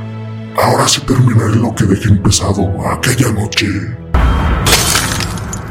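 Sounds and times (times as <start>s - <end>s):
speech: 0.6s - 4.0s
glass skylight shattering as a beast falls through: 4.6s - 5.6s.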